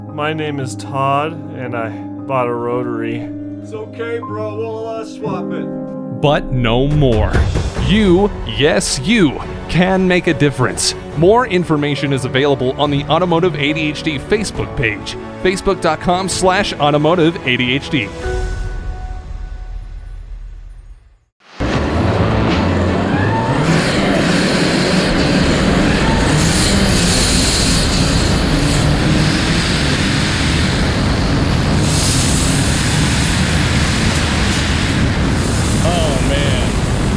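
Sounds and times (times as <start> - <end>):
speech: 0.2 - 18.6
low rumble: 6.2 - 10.2, 18.9 - 37.1
diesel race car engine roaring: 21.5 - 37.1
rattling road noise of a diesel race car: 21.6 - 37.1.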